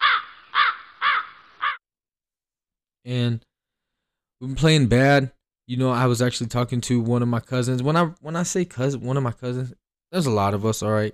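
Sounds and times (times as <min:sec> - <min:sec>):
crows cawing: 0:00.0 - 0:01.8
speech: 0:03.0 - 0:03.5, 0:04.4 - 0:11.1.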